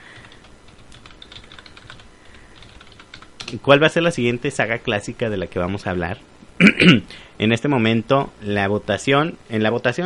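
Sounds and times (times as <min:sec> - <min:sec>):
computer keyboard typing: 0:00.1 - 0:03.6
speech: 0:03.5 - 0:10.0.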